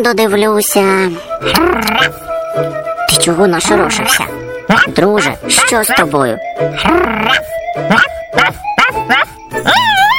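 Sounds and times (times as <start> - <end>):
speech: 0.0 - 10.1
dog barking at thieves by a fence: 7.9 - 9.9.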